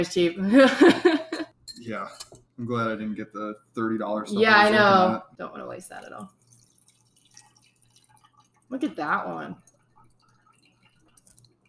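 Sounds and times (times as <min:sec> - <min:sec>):
speech: 0:00.0 - 0:01.2, 0:01.9 - 0:06.4, 0:08.7 - 0:09.6
laughter: 0:00.4 - 0:01.5, 0:04.4 - 0:05.2
juice dripping through a strainer: 0:02.4 - 0:04.2, 0:05.4 - 0:11.6.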